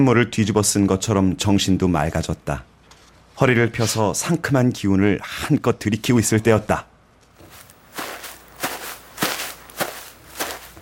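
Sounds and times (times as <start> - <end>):
speech: 0.0 - 2.7, 3.4 - 6.9
rustling footsteps dragging along: 7.3 - 10.8.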